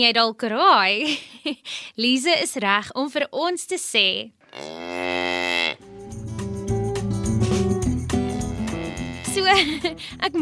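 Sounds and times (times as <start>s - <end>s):
speech: 0.0s - 5.0s, 9.5s - 10.4s
cow mooing: 4.5s - 6.9s, 8.2s - 9.5s
instrumental music with steady sustained notes: 5.8s - 10.4s
laughter: 9.3s - 10.4s.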